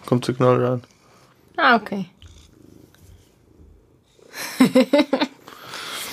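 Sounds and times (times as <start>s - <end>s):
speech: 0.1s - 1.0s, 1.6s - 2.2s, 4.6s - 5.3s
cat purring contentedly: 0.1s - 4.8s
laughter: 4.4s - 5.4s.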